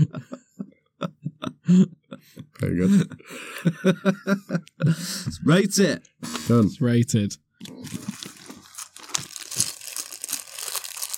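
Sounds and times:
speech: 0.0s - 0.4s, 1.7s - 2.0s, 2.6s - 7.4s
laughter: 0.0s - 5.4s
plastic wrapper of a microwave burger crinkling and rustling: 7.6s - 11.1s.

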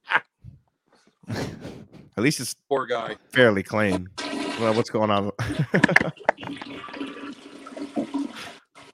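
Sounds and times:
speech: 1.3s - 1.5s, 2.2s - 7.1s
toilet flushing: 4.2s - 4.9s, 6.3s - 8.9s
laughter: 5.4s - 6.4s.

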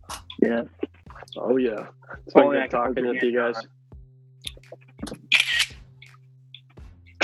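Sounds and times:
speech: 0.4s - 3.8s
simulated camera shutter click from a screenshot: 5.3s - 5.8s.

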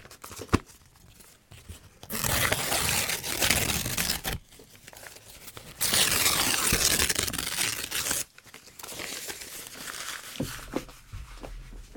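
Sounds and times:
paper crinkling and rustling with handling of the sheet: 0.0s - 10.9s
piece of paper tearing: 2.1s - 4.5s, 5.7s - 8.3s.

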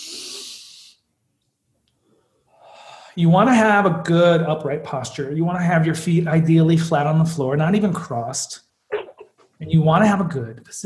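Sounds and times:
deep breath in through the nose, out through the mouth, as a breathing exercise: 0.0s - 1.0s, 2.0s - 3.2s
speech: 3.2s - 8.6s, 9.6s - 10.8s.

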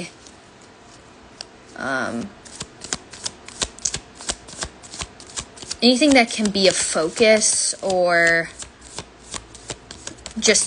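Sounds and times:
speech: 0.0s - 0.2s, 1.8s - 2.4s, 5.8s - 8.6s, 10.4s - 10.6s
tarot cards being shuffled: 2.4s - 10.6s.

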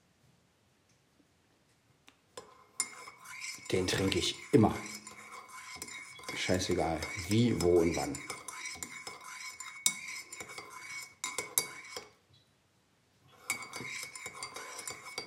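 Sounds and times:
spoon clinking and scraping against a cup while stirring morning coffee: 2.4s - 12.2s, 13.4s - 15.2s
speech: 3.7s - 5.0s, 6.4s - 8.4s.

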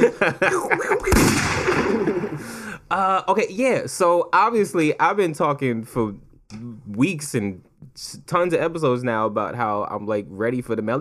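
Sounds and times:
laughter: 0.0s - 2.7s
speech: 0.2s - 1.4s, 2.9s - 10.9s
gunshot sound effect: 1.0s - 2.4s.

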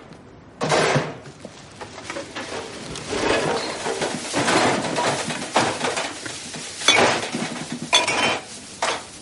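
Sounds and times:
empty liquor bottles tipped from a trash bag into a bin: 3.1s - 6.2s, 6.8s - 9.1s.

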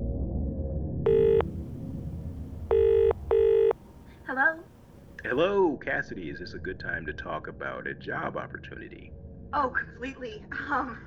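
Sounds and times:
electronic telephone ringing: 1.1s - 4.4s
speech: 5.3s - 11.0s.

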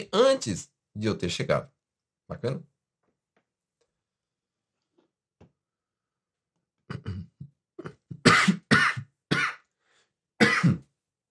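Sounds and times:
speech: 0.0s - 2.7s, 6.9s - 8.6s
harsh coughing: 6.9s - 9.7s, 10.4s - 10.9s
low throat-clearing rumbles: 6.9s - 9.7s, 10.4s - 10.9s.

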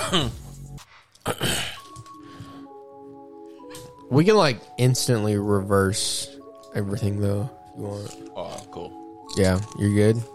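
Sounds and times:
throat clearing: 0.0s - 0.4s, 1.2s - 1.9s
speech: 0.1s - 0.4s, 1.2s - 1.6s, 4.1s - 10.3s
rough gravelly coughing: 1.2s - 1.9s.

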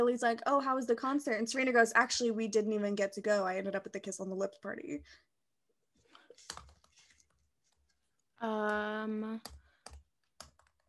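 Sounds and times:
speech: 0.0s - 5.3s, 8.4s - 9.6s
typing on a computer keyboard: 9.4s - 10.8s.

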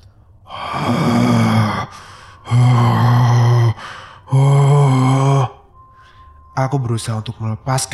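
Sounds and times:
creature with a blackened ruined face groaning: 0.5s - 5.6s
speech: 6.6s - 7.9s.

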